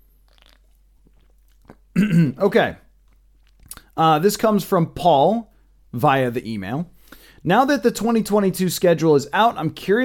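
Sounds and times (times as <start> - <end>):
sipping a drink: 0.1 - 2.2
swallow: 0.2 - 2.3
wet mouth clicks: 0.3 - 1.9, 3.1 - 4.0
speech: 2.0 - 2.8, 4.0 - 10.0.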